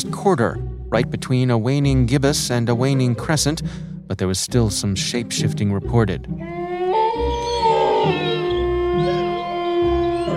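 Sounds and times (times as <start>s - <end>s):
speech: 0.0s - 6.6s
several wolves howling in chorus: 6.4s - 10.3s.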